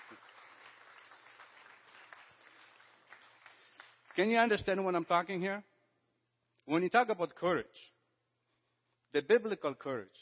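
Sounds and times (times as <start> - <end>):
audience applause: 0.0 - 4.5
speech: 4.2 - 5.7, 6.7 - 8.0, 9.1 - 10.2.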